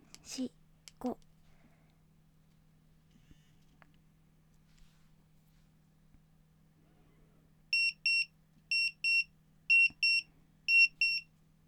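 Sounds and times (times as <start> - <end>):
low hum: 0.0 - 11.6
speech: 0.3 - 1.3
countdown timer alarm double beeps: 7.8 - 11.2.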